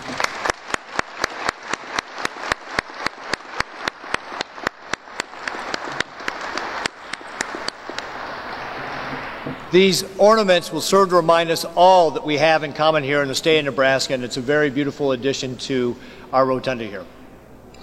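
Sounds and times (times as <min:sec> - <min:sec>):
sharp individual hand claps: 0:00.0 - 0:08.3
roomful of people applauding in a state rotunda: 0:00.0 - 0:09.7
speech: 0:09.7 - 0:17.2.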